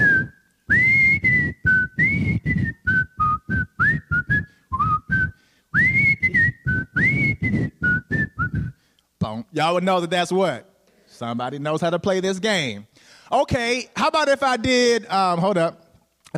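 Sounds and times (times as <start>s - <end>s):
person whistling a tune: 0.0s - 8.8s
speech: 9.6s - 16.3s.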